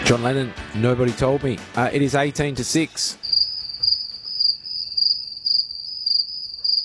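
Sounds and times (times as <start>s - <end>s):
speech: 0.1s - 3.2s
crickets chirping in a high trill: 3.2s - 6.8s.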